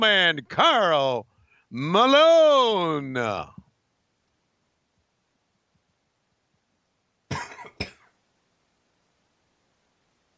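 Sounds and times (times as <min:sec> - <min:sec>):
speech: 0:00.0 - 0:03.6
person coughing: 0:07.3 - 0:08.1.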